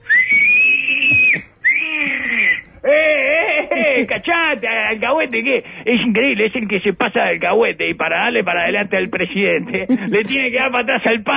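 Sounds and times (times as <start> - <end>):
person whistling shrilly as a jeer: 0.0 - 2.7
laughter: 2.8 - 4.3, 9.6 - 10.6
speech: 4.0 - 11.3.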